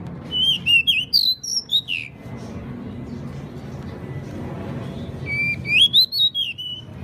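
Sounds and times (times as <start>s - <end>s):
pied bushchat singing: 0.3s - 2.1s, 5.2s - 6.9s.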